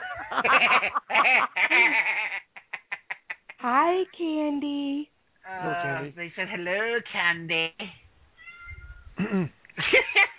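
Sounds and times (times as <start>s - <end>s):
laughter: 0.0s - 3.6s, 9.4s - 10.3s
speech: 0.3s - 2.4s, 3.6s - 8.0s, 9.2s - 10.3s
cat meowing: 8.4s - 9.2s.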